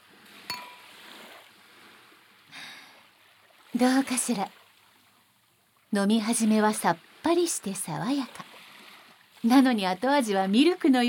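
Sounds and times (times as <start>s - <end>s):
glasses of blue summer cocktail clinking in a toast: 0.5s - 0.8s
speech: 3.8s - 4.6s, 5.9s - 8.5s, 9.4s - 11.0s.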